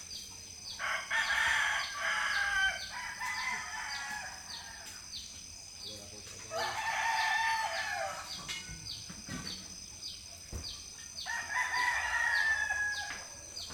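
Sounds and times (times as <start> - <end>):
chickens crowing in a village in the Philippines: 0.7 - 5.0, 6.5 - 8.6, 11.2 - 13.6.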